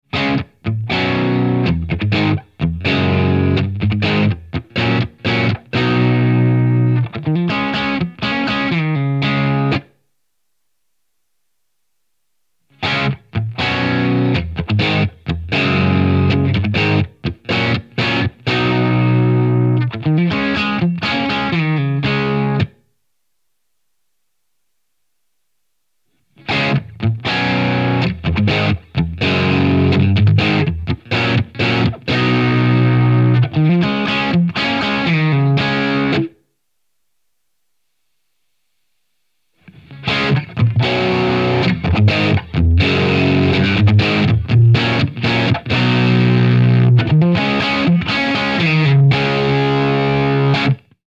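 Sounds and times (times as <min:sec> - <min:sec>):
sound processed through Strymon Deco and Strymon Iridium pedals with tape effect: 0:00.1 - 0:23.0, 0:23.7 - 0:36.5, 0:37.2 - 0:51.0.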